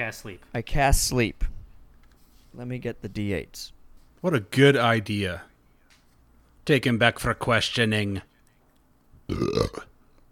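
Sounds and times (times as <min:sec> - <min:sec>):
speech: 0:00.0 - 0:01.5, 0:02.5 - 0:05.5, 0:06.6 - 0:08.3, 0:09.3 - 0:09.9
low rumbling human burp with a rising tone: 0:09.3 - 0:09.9.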